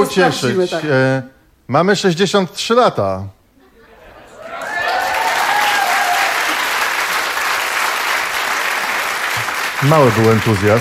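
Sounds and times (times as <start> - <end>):
speech: 0.0 - 3.4, 9.8 - 10.8
audience applauding at a radio station anniversary celebration: 4.4 - 10.8.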